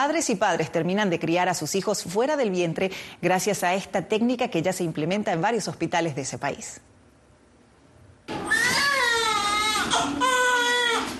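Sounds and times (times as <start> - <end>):
speech: 0.0 - 7.0
newborn baby crying in a delivery room: 8.3 - 11.1.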